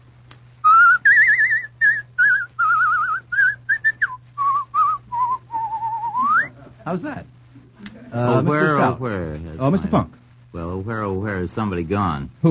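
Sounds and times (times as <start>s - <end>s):
faint low hum: 0.0s - 12.4s
man whistling a lilting tune: 0.6s - 6.5s
speech: 6.9s - 10.2s, 10.8s - 12.4s.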